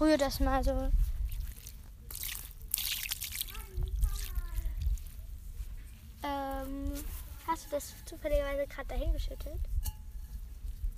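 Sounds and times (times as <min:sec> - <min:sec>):
speech: 0:00.0 - 0:01.1, 0:06.2 - 0:09.8
dye trickling and dripping onto a towel for tie-dye: 0:01.2 - 0:04.8.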